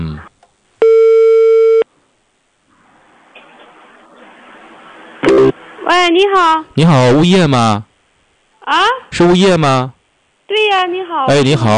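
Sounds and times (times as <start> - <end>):
telephone ringing tone on an outgoing call to a residential property management office: 0.8 - 1.8
speech: 5.9 - 7.9, 8.7 - 11.7.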